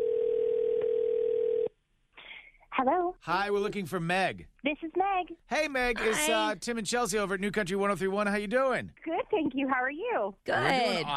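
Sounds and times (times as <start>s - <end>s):
steady electronic telephone ring tone: 0.0s - 1.7s
speech: 2.8s - 11.1s.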